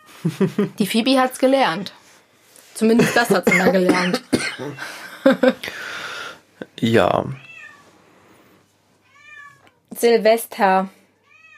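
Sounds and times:
laughter: 0.2 - 0.8, 3.0 - 5.8
speech: 0.2 - 2.0, 2.8 - 5.8, 6.8 - 7.4, 9.9 - 11.0
cat meowing: 7.3 - 7.9, 9.0 - 9.9, 11.2 - 11.5.

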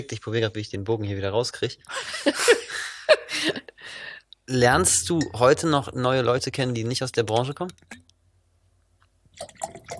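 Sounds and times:
speech: 0.0 - 8.1, 9.4 - 9.8
laughter: 1.9 - 3.8
water pouring into a glass: 9.4 - 9.9.

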